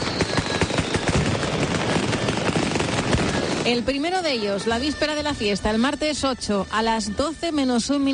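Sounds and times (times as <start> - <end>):
fireworks exploding in a dense barrage: 0.0 - 6.0
speech: 3.7 - 8.1.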